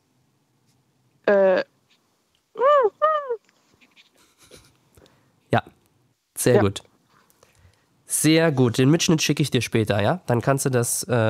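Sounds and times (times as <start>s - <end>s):
person imitating a seagull call live on the radio: 2.6s - 3.4s
speech: 6.4s - 6.9s, 8.2s - 11.2s.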